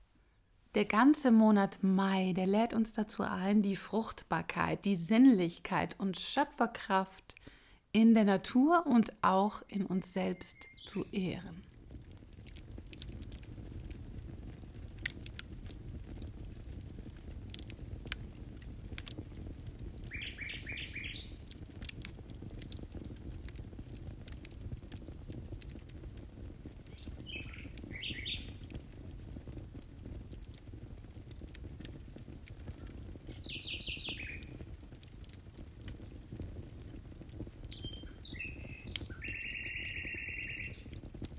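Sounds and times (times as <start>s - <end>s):
speech: 0.7s - 11.7s
nightingale singing at night in the countryside: 9.8s - 11.5s, 18.2s - 21.3s, 27.3s - 28.5s, 37.8s - 41.3s.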